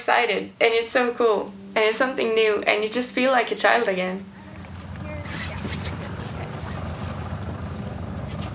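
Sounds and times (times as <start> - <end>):
speech: 0.0 - 4.3
small white motorboat engine rumble along a fjord: 1.3 - 8.5
gusts of wind buffeting the microphone: 4.6 - 8.5.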